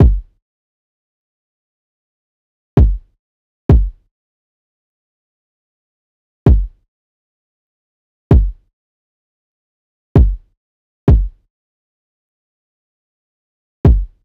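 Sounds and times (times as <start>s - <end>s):
kick drum loops at 130: 0.0s - 0.3s, 2.8s - 3.1s, 3.7s - 4.0s, 6.5s - 6.8s, 8.3s - 8.6s, 10.2s - 10.4s, 11.1s - 11.4s, 13.9s - 14.2s.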